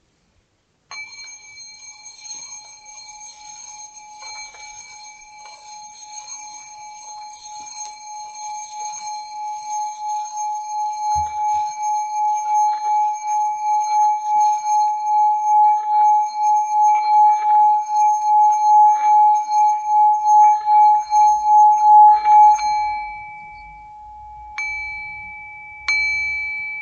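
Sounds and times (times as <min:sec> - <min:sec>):
singing bowl ringing: 0:00.9 - 0:26.8.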